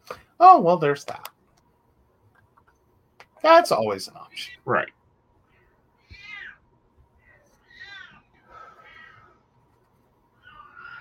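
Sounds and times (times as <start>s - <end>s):
speech: 0.4s - 1.3s, 3.4s - 5.0s
female cat meowing insistently: 6.0s - 6.6s, 7.6s - 9.3s.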